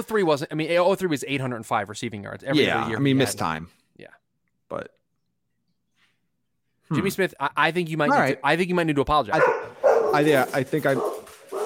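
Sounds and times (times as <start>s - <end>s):
speech: 0.0s - 5.0s, 6.9s - 11.2s
dog barking and yipping with whiny calls: 9.3s - 11.6s.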